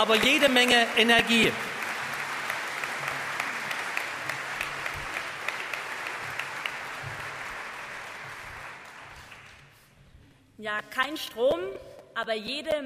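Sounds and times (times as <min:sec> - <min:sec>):
speech: 0:00.0 - 0:01.7, 0:10.6 - 0:12.8
audience applause: 0:00.0 - 0:09.8.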